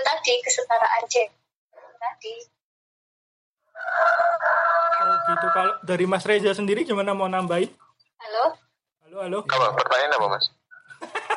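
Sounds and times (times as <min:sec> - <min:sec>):
speech: 0:00.3 - 0:01.4, 0:02.0 - 0:02.6, 0:03.8 - 0:10.6
rooster crowing: 0:03.7 - 0:05.8.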